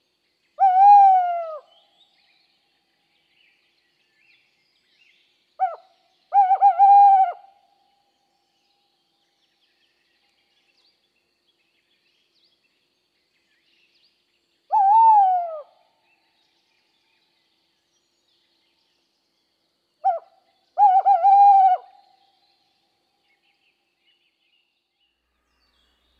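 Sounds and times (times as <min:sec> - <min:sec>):
tawny owl: 0:05.6 - 0:07.6, 0:14.7 - 0:15.8, 0:20.0 - 0:22.2.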